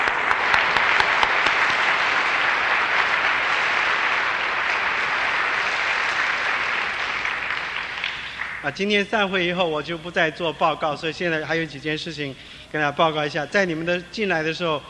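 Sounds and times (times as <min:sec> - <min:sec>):
large audience applauding: 0:00.0 - 0:09.5
speech: 0:08.7 - 0:14.8.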